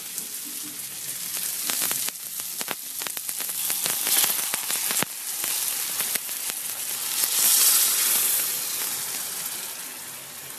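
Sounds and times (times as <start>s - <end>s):
cooking stock poured into hot pan of rice seasoned with paprika, saffron, wine and cayenne: 0.0s - 10.5s
crackling pops: 1.3s - 9.0s.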